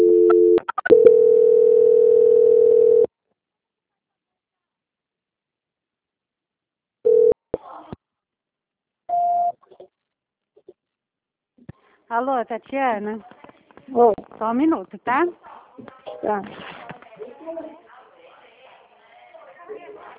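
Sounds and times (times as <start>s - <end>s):
steady telephone line tone as a call is transferred to quality control: 0.0s - 3.1s, 7.1s - 7.4s
speech: 12.2s - 15.5s, 16.2s - 16.7s.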